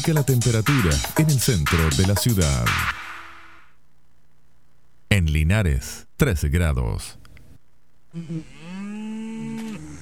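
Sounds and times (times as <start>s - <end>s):
speech: 0.0s - 3.0s, 5.2s - 7.2s, 8.1s - 8.7s
cow mooing: 8.2s - 10.0s.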